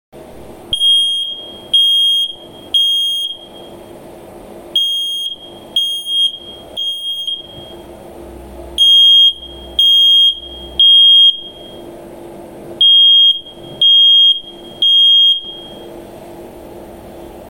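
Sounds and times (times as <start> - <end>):
alarm tones: 0.7 - 3.7, 4.8 - 7.9, 8.8 - 11.8, 12.8 - 15.9.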